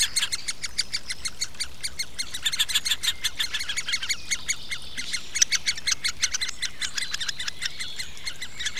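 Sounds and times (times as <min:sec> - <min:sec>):
great spotted woodpecker nestlings begging with grating chatter: 0:00.0 - 0:08.7.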